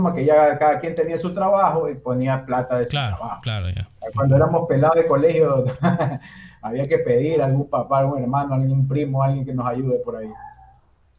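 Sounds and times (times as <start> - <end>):
speech: 0.0 - 10.5
laughter: 2.9 - 4.5
small dog barking in the background: 10.3 - 10.8.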